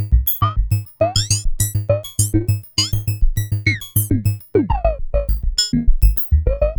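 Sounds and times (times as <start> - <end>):
MS-20 synthesizer effects: 0.2 - 6.6.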